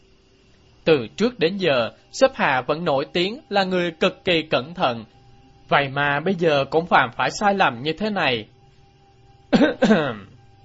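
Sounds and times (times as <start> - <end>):
speech: 0.9 - 8.5, 9.5 - 10.3
feigned throat clearing: 9.5 - 10.4.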